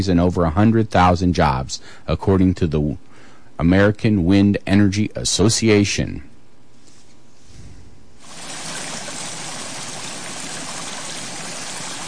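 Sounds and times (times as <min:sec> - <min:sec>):
speech: 0:00.0 - 0:06.3
water flowing in a stream: 0:08.2 - 0:12.0.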